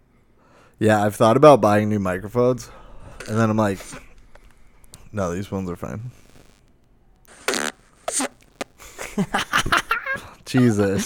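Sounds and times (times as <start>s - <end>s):
speech: 0.8s - 4.1s, 5.1s - 6.2s, 9.2s - 9.8s, 10.5s - 11.0s
buzzy fart noises made into a phone: 7.3s - 10.6s
laughter: 8.8s - 11.0s.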